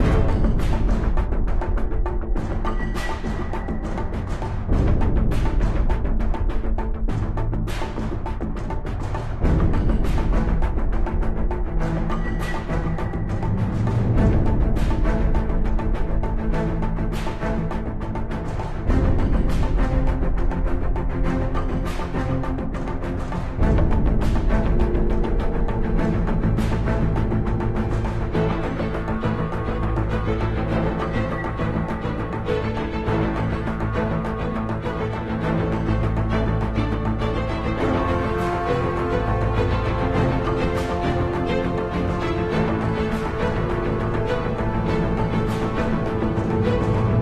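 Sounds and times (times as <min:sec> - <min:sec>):
idle ambient music: 0:00.0 - 0:47.2.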